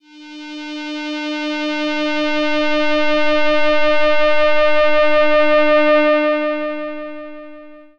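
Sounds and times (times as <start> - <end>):
pelog instrumental drone: 0.0 - 7.9.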